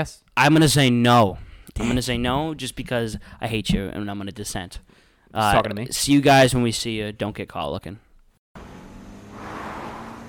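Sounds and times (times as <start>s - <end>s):
speech: 0.0s - 8.0s
Toyota Prius car driving: 8.6s - 10.2s
broadband road noise: 8.6s - 10.2s.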